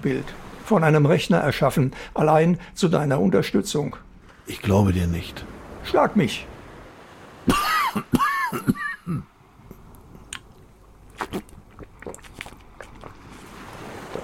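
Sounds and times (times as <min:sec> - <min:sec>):
speech: 0:00.0 - 0:06.5, 0:07.4 - 0:09.3
person coughing harshly: 0:07.5 - 0:09.3
mouth clicks and swallowing: 0:09.7 - 0:14.2.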